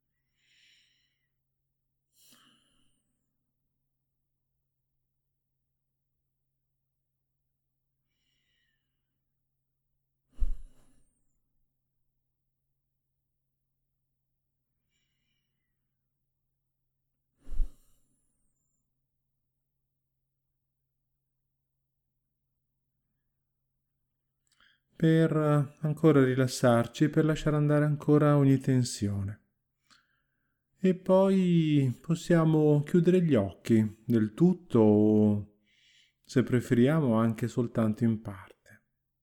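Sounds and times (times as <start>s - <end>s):
slow deep breaths taken to relax: 0.3s - 1.3s, 2.2s - 3.2s, 10.4s - 11.3s, 24.5s - 24.9s, 29.8s - 30.7s, 35.6s - 36.3s
speech: 25.0s - 29.4s, 30.8s - 35.5s, 36.3s - 38.5s.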